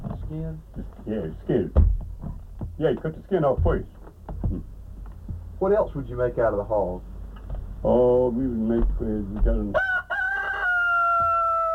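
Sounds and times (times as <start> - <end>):
faint noise: 0.0 - 11.7
speech: 0.3 - 2.0, 2.8 - 4.7, 5.6 - 7.1, 7.8 - 9.8
rooster crowing on a hog farm: 9.7 - 11.7.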